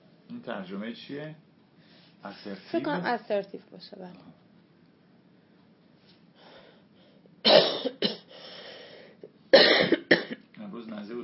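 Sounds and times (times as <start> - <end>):
speech: 0.4 - 1.5, 2.2 - 4.4
harsh hacking coughs: 7.4 - 8.3, 9.5 - 10.4.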